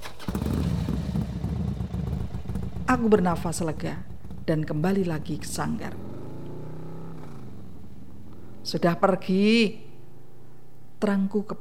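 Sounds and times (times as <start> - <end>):
motorcycle engine starting: 0.0 - 8.9
speech: 2.9 - 6.1, 8.7 - 9.8, 11.0 - 11.5.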